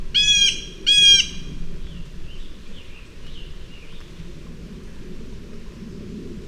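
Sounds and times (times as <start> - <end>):
blue jay giving a harsh nasal call: 0.1 - 1.5.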